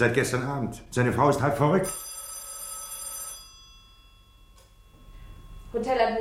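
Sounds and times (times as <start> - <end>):
speech: 0.0 - 2.1, 5.7 - 6.1
telephone bell ringing at a hotel: 1.8 - 5.7.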